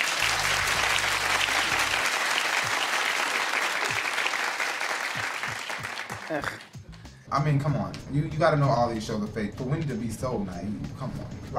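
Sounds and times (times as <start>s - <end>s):
audience applause: 0.0s - 6.7s
speech: 6.3s - 6.7s, 7.3s - 11.5s.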